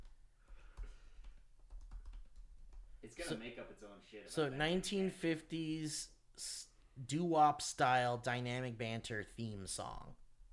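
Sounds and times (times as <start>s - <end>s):
faint typing on a computer keyboard: 0.0s - 2.9s
speech: 3.1s - 10.2s.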